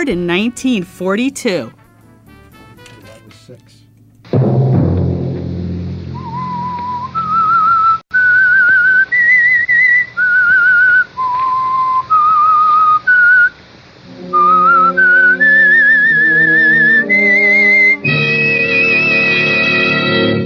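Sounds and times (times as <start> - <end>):
speech: 0.0 - 1.8
fuller instrumental backing: 0.0 - 8.0, 14.0 - 20.4
low hum: 0.0 - 17.0
clear whistled theme melody: 6.2 - 13.6, 14.2 - 20.4.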